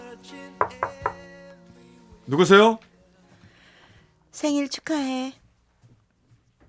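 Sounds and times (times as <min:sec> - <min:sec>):
quick knocks on a door: 0:00.6 - 0:01.3
speech: 0:02.3 - 0:02.9, 0:04.4 - 0:05.4.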